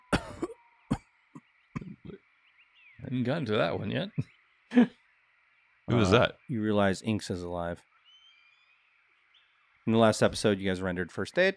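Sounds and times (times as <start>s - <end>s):
faint steady hum: 0.0s - 11.5s
person coughing: 0.1s - 0.6s
speech: 3.1s - 5.0s, 5.9s - 7.9s, 9.8s - 11.5s
laughter: 3.5s - 4.9s.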